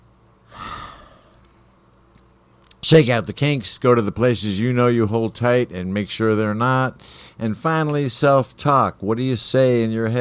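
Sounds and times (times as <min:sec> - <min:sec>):
deep breath taken as a grounding exercise: 0:00.4 - 0:01.5, 0:07.0 - 0:07.4
speech: 0:02.9 - 0:10.2.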